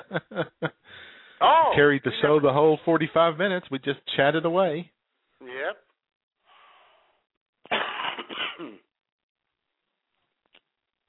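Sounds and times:
laughter: 0.0 - 0.8
speech: 0.1 - 0.6, 1.8 - 5.0
breathy inhale: 0.8 - 1.4
loud cough: 7.7 - 8.9.

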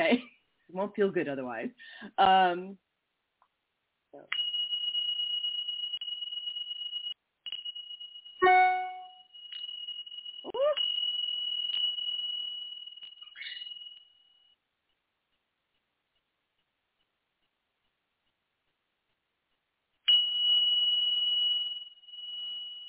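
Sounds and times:
speech: 0.8 - 2.8, 4.1 - 4.4
Tibetan bell ringing: 4.3 - 14.2, 20.1 - 22.8.

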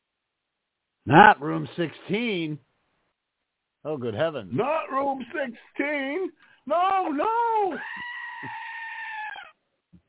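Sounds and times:
speech: 1.0 - 2.7, 3.8 - 8.6
frightened goat screaming: 6.9 - 9.6.

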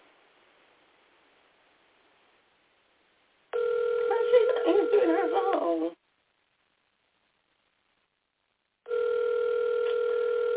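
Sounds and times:
telephone ringing over the line: 3.6 - 5.7, 8.9 - 10.5
faint voice: 4.1 - 6.0.

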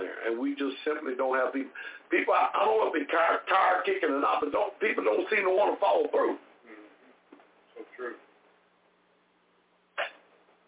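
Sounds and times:
quiet hum: 0.0 - 10.6
speech: 0.2 - 6.5, 8.0 - 8.2
person sneezing: 10.0 - 10.3.

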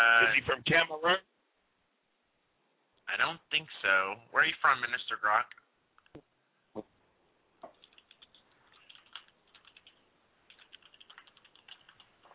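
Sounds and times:
speech: 0.0 - 1.3, 3.1 - 6.9
typing on a computer keyboard: 7.7 - 12.3.

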